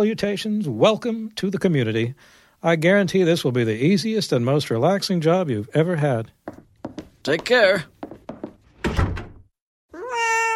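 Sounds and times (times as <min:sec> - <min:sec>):
speech: 0:00.0 - 0:06.6, 0:07.2 - 0:07.9
heavy thumps: 0:06.4 - 0:09.5
cat meowing in a video game: 0:09.9 - 0:10.5.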